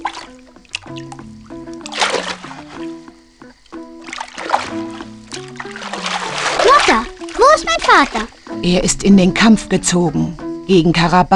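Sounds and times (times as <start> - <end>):
water splashing: 0.0 - 8.6
speech: 0.9 - 1.3, 6.9 - 11.3.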